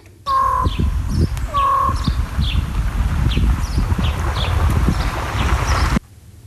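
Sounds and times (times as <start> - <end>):
steady outdoor rumble: 0.1 - 6.0
crow calling in imitation of a raven's croak: 0.3 - 2.6
small birds chirping: 0.3 - 6.0.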